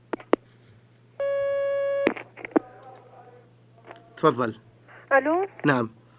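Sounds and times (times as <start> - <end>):
telephone line tone of an incoming call on a phone-in line: 1.2 - 2.2
speech: 4.2 - 6.0.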